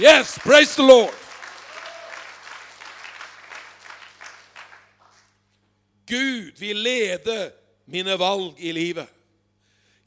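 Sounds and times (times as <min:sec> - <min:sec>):
speech: 0:00.0 - 0:01.2, 0:06.1 - 0:09.2
church congregation applauding: 0:00.0 - 0:05.4.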